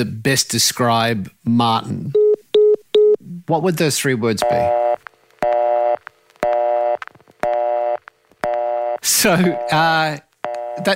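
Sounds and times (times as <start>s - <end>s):
speech: 0.0s - 2.2s, 3.5s - 4.8s, 9.0s - 10.9s
voice talking over the phone line: 4.4s - 4.9s, 9.0s - 10.9s
telephone busy signal beeping on a new phone line: 4.4s - 9.9s, 10.5s - 10.9s.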